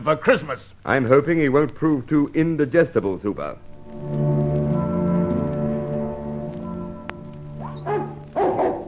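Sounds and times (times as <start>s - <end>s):
speech: 0.0s - 4.2s
low steady droning tone: 3.6s - 7.8s
dog barking: 7.6s - 8.8s.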